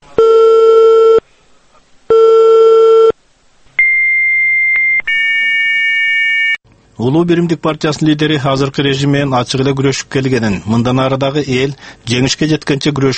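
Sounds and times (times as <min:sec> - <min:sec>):
telephone busy signal on an unanswered number: 0:00.2 - 0:01.2, 0:02.1 - 0:03.2, 0:03.8 - 0:06.6
higher-pitched telephone tone: 0:03.8 - 0:06.6
speech: 0:07.0 - 0:13.1.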